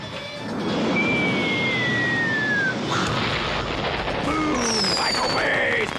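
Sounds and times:
whistling sweeping tones: 0:00.2 - 0:03.2, 0:04.5 - 0:05.7
action movie explosion effects: 0:00.4 - 0:05.9
rumbling debris: 0:00.5 - 0:05.9.

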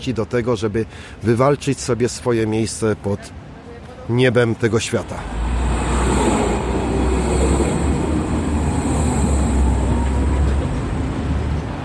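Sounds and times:
speech: 0:00.0 - 0:03.4, 0:04.1 - 0:05.6
tram rolling along rails heard from inside the car: 0:04.5 - 0:11.8.

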